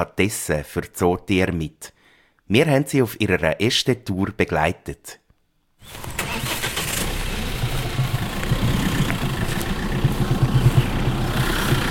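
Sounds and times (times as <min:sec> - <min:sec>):
speech: 0:00.0 - 0:05.2
truck diesel engine idling in a zoo courtyard: 0:05.9 - 0:11.9.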